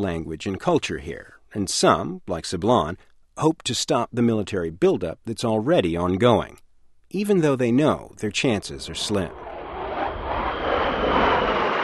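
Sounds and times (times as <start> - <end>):
speech: 0.0 - 9.4
aircraft engine roaring overhead on Guam amid a military buildup: 8.8 - 11.8.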